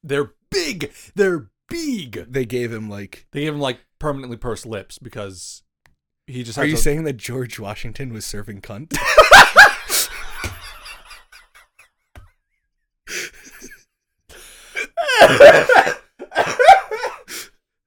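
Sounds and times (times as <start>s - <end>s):
speech: 0.0s - 5.6s, 6.3s - 9.5s
laughter: 8.9s - 11.8s, 15.0s - 17.1s
strained breathy sounds: 14.3s - 15.0s
harsh rasping coughing fit: 14.7s - 17.5s.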